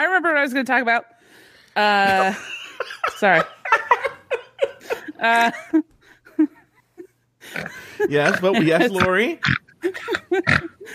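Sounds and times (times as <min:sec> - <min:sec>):
speech: 0:00.2 - 0:03.6, 0:05.2 - 0:06.6, 0:07.5 - 0:10.9
person laughing with loud pig-like snorts: 0:07.5 - 0:10.9.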